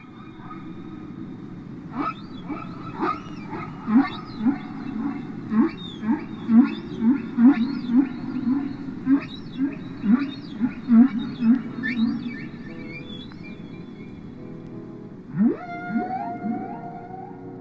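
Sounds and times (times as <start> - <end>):
humpback whale song: 1.9 - 14.1, 15.3 - 17.5.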